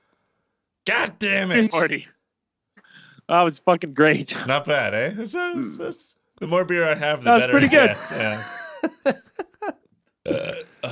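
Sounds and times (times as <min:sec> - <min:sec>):
speech: 0:00.9 - 0:02.2, 0:03.3 - 0:10.6
laughter: 0:07.2 - 0:09.9
loud rough burp: 0:10.2 - 0:10.9
short throaty vocal sounds: 0:10.2 - 0:10.9.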